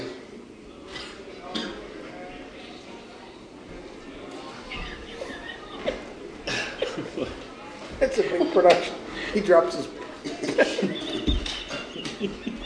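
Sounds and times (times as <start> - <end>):
murmur in a busy room: 0.0 - 12.6
laughter: 4.6 - 9.0, 9.8 - 12.6
person coughing: 6.5 - 7.2
speech: 8.6 - 10.0.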